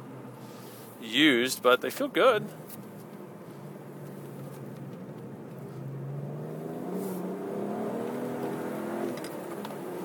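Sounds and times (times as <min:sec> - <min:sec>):
road rumble inside car: 0:00.0 - 0:10.0
speech: 0:01.0 - 0:02.8
manual car engine accelerating in third gear onto race track: 0:03.5 - 0:10.0.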